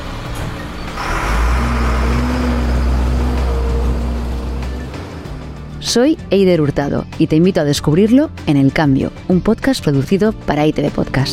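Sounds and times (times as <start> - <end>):
garbage truck heavy diesel engine rumbling: 0.0 - 8.4
speech: 5.9 - 11.3.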